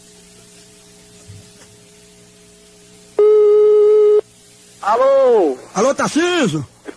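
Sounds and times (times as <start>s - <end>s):
telephone busy tone after a dropped call: 3.2s - 4.2s
speech: 4.8s - 6.7s.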